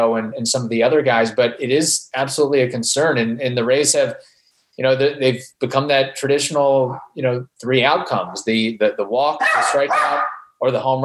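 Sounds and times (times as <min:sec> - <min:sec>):
speech: 0:00.0 - 0:11.0
dog barking: 0:09.4 - 0:10.5.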